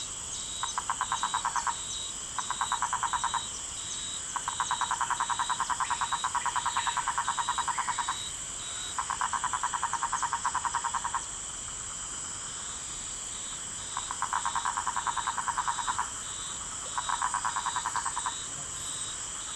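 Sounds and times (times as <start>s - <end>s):
Rhinella lescurei calling: 0.6s - 3.6s, 4.3s - 11.3s, 13.9s - 18.5s.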